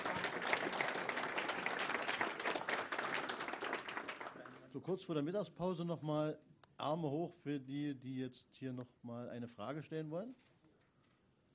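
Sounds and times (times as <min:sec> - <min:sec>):
audience applause: 0:00.0 - 0:04.7
speech: 0:04.7 - 0:10.5.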